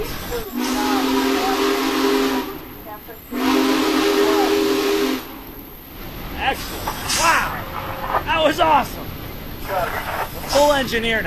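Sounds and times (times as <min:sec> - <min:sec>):
Big Boy steam locomotive whistle blown by a rider on board: 0:00.0 - 0:02.7, 0:03.3 - 0:05.5
steam hissing: 0:00.0 - 0:11.2
speech: 0:10.6 - 0:11.2.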